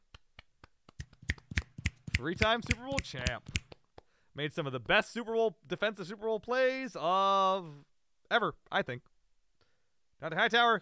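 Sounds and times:
hand clapping: 0:00.0 - 0:04.1
speech: 0:02.2 - 0:03.6, 0:04.4 - 0:09.1, 0:10.2 - 0:10.8.

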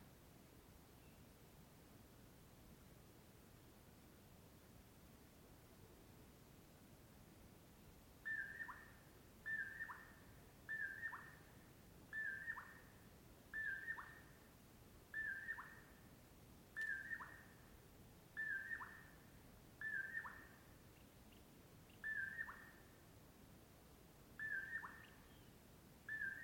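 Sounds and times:
Common Poorwill singing at dawn: 0:08.2 - 0:14.4, 0:15.1 - 0:16.0, 0:16.8 - 0:17.6, 0:18.4 - 0:23.0, 0:24.4 - 0:26.4.

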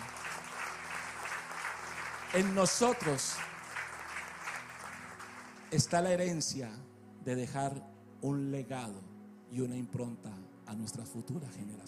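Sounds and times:
roomful of people clapping: 0:00.0 - 0:06.3
speech: 0:02.3 - 0:03.5, 0:05.7 - 0:11.8.

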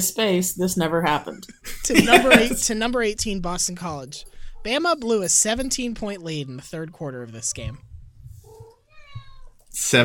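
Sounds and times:
speech: 0:00.0 - 0:07.9, 0:09.8 - 0:10.0
laughter: 0:01.6 - 0:02.7
cat meowing: 0:07.3 - 0:09.7.

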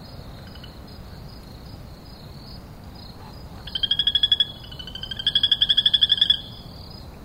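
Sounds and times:
frogs croaking: 0:00.0 - 0:07.0.

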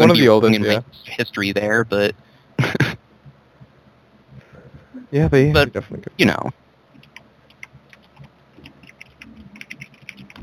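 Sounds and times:
speech: 0:00.1 - 0:03.0, 0:05.1 - 0:06.6
typing on a computer keyboard: 0:07.0 - 0:10.4.

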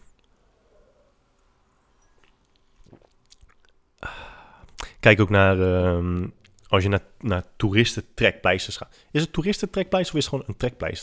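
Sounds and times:
person sipping a drink: 0:00.0 - 0:05.0
slurping gulp: 0:01.9 - 0:03.8
soft mouth clicks: 0:02.0 - 0:05.0, 0:06.4 - 0:06.8
speech: 0:05.0 - 0:11.0.

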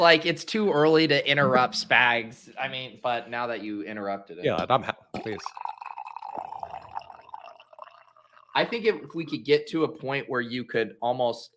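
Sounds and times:
speech: 0:00.0 - 0:05.7, 0:08.6 - 0:11.5
coffee pouring into a cup: 0:05.2 - 0:09.2.

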